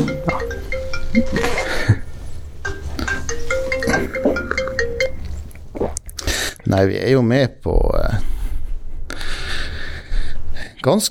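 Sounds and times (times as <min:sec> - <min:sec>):
mobile phone ringing with short electronic melody: 0:00.0 - 0:05.4
steady hum: 0:00.0 - 0:11.0
speech: 0:06.7 - 0:08.4, 0:10.8 - 0:11.0.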